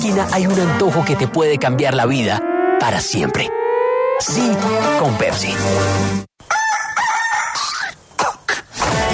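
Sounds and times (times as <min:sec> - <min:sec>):
speech: 0:00.0 - 0:03.6, 0:04.2 - 0:06.6
rooster crowing: 0:06.4 - 0:08.0.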